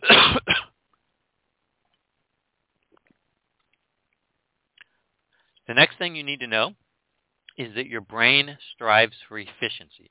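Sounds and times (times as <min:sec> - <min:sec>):
loud harsh cough: 0:00.0 - 0:00.8
speech: 0:05.7 - 0:06.8, 0:07.6 - 0:10.0.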